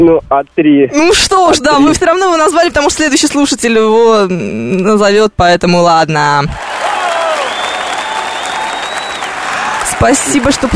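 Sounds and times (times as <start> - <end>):
speech: 0.0 - 6.7, 10.0 - 10.7
audience applause with many hands clapping: 6.6 - 10.7.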